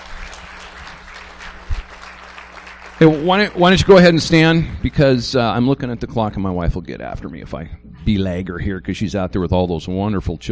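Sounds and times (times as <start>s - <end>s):
audience applause: 0.0s - 5.4s
speech: 3.0s - 10.5s.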